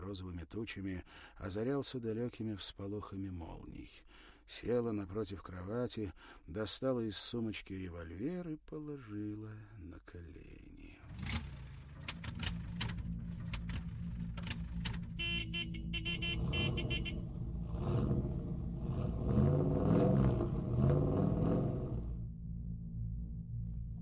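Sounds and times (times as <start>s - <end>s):
speech: 0.1s - 11.4s, 16.6s - 18.4s, 19.0s - 20.0s
vintage Bentley Le Mans car 70-horsepower engine moving slowly: 11.0s - 24.0s
car horn honking: 15.0s - 17.6s.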